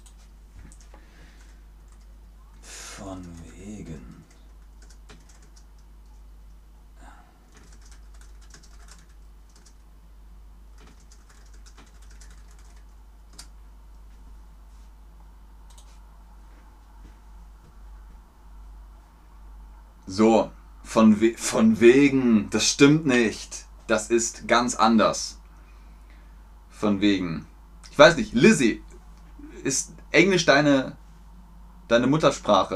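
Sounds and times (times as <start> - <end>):
low steady hum: 0.0 - 32.7
speech: 3.0 - 4.3, 20.1 - 25.4, 26.8 - 28.9, 29.6 - 31.0, 31.9 - 32.7
typing on a computer keyboard: 3.2 - 5.8, 7.5 - 9.8, 10.8 - 13.5.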